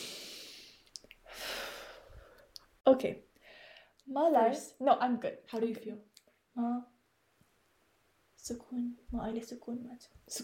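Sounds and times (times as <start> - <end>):
deep breath drawn in during a calming exercise: 0.0 - 2.5, 3.4 - 3.9
speech: 2.9 - 3.3, 4.1 - 6.9, 8.4 - 10.4.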